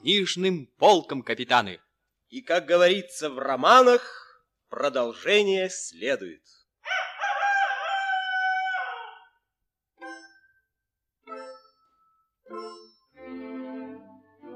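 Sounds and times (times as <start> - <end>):
speech: 0.0 - 7.0
rooster crowing: 6.8 - 9.4.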